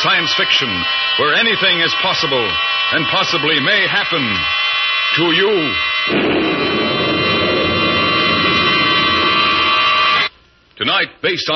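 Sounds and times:
speech: 0.0 - 6.8, 10.8 - 11.5
experimental jet rocket aircraft engine roar: 6.1 - 10.3.

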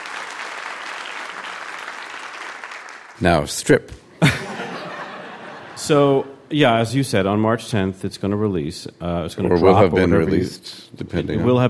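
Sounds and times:
audience applause: 0.0 - 3.2
speech: 3.2 - 4.4, 5.9 - 11.6
laughter: 4.2 - 6.4.

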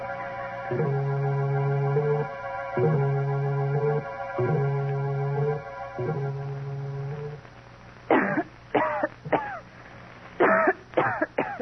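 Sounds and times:
repeating low droning tones: 0.0 - 7.5
woman coughing in harsh bursts: 8.1 - 9.6, 10.4 - 11.6.

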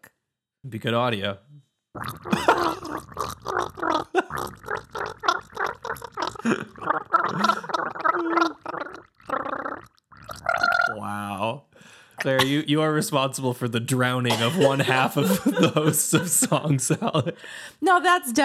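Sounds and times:
speech: 0.6 - 3.3, 6.4 - 7.6, 12.2 - 18.4
person gargling water to a theme tune: 2.0 - 11.3
laughter: 2.3 - 2.9, 6.4 - 8.3, 12.2 - 13.3, 14.1 - 17.4.

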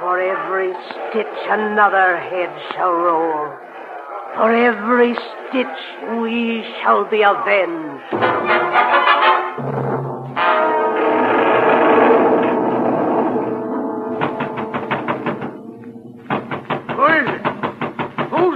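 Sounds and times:
speech: 0.1 - 8.8
sustained droning tonal sound: 9.6 - 16.4
rapid loud knocking on a door: 14.2 - 15.6, 16.2 - 18.5.

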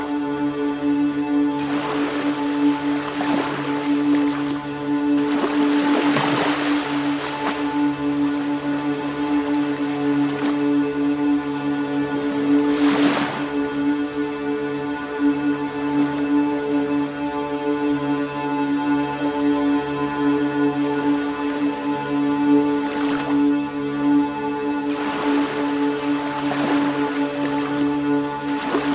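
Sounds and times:
ocean waves surging and washing: 0.0 - 16.8, 22.8 - 28.9
humming drone of soothing ambient music: 0.0 - 28.9.

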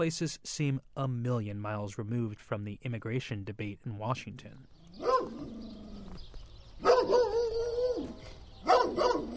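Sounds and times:
speech: 0.0 - 5.4
dog barking in drawn-out whining calls: 5.0 - 5.8, 6.8 - 9.3.

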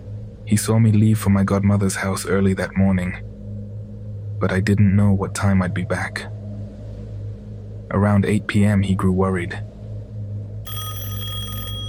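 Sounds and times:
constant low hum: 0.0 - 11.8
speech: 0.5 - 3.3, 4.4 - 6.4, 7.9 - 9.7
house telephone ringing: 10.7 - 11.8.

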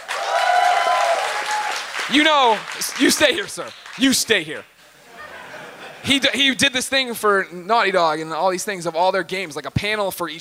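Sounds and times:
audience applause at a live show: 0.0 - 4.4
speech: 2.1 - 4.7, 6.0 - 10.3
laughter: 4.8 - 6.6.

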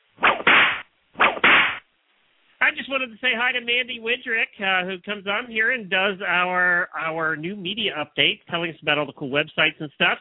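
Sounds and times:
whip crack sound effect: 0.2 - 1.8
speech: 2.8 - 10.1.

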